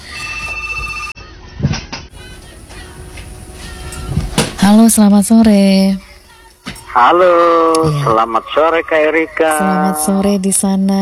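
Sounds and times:
telephone on a call-in line ringing with an electronic tone: 0.2 - 1.2
speech: 4.7 - 6.1, 7.0 - 11.0.

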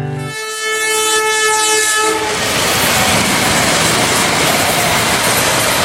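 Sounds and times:
train horn blaring: 0.1 - 3.6
train cars rumbling and rattling over the rails: 0.3 - 5.8.

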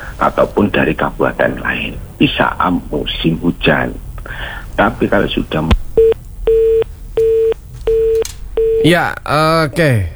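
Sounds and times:
speech: 0.2 - 6.2, 8.8 - 10.1
telephone line beeps after a call is cut off: 5.9 - 8.9
person talking loudly over the telephone line: 8.8 - 10.1.

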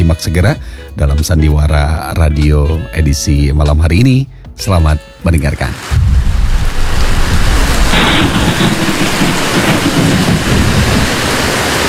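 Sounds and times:
speech: 0.1 - 6.1, 8.2 - 10.2
heavy rain: 5.6 - 11.8.

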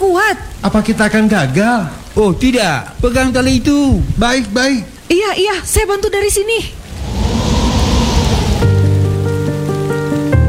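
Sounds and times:
speech: 0.0 - 6.8
heavy rain pouring down: 0.0 - 10.4
strong wind: 3.0 - 4.4, 6.1 - 9.3.

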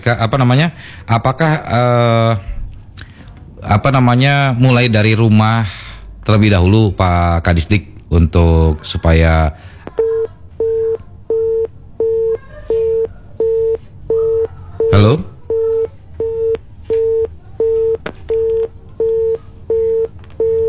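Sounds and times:
speech: 0.0 - 2.5, 3.6 - 9.7, 14.9 - 15.3
telephone busy signal on an unanswered call: 10.0 - 20.6.

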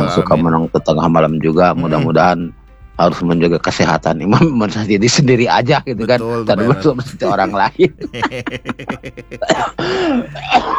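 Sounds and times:
person coughing: 0.0 - 0.7, 1.7 - 2.4, 6.0 - 10.7
throat clearing: 0.0 - 0.7, 6.0 - 10.7
strained drawn-out vocal sound: 0.0 - 3.5, 5.3 - 10.7
laughter: 0.0 - 3.9, 5.2 - 10.7
speech: 0.0 - 10.7.

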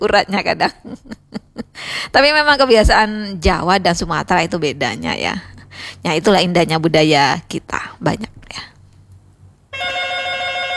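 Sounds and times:
speech: 0.0 - 1.2, 1.8 - 8.7
laughter: 0.5 - 1.8
telephone ringing with bright electronic bell tone: 9.7 - 10.7.

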